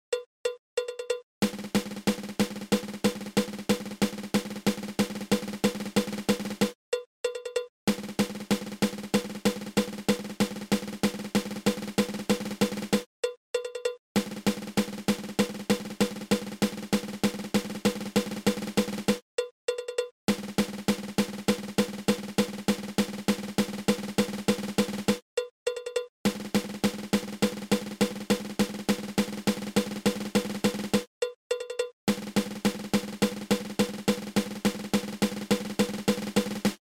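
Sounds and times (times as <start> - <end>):
single drag tap drum rudiment: 0.4 - 19.2, 19.8 - 36.8.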